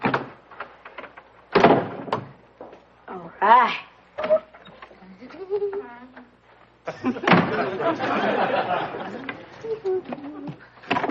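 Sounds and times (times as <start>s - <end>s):
door pushed shut with a solid thud: 1.5s - 2.4s, 7.2s - 7.7s
speech: 3.2s - 4.5s, 7.0s - 10.3s
laughter: 6.8s - 10.6s.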